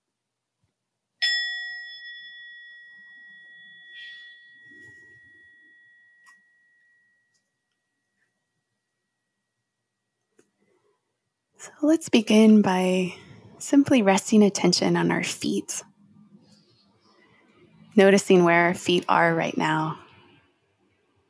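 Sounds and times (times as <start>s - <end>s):
meditation bell struck to begin a mindfulness practice: 1.2s - 9.6s
speech: 11.6s - 15.9s, 18.0s - 20.0s.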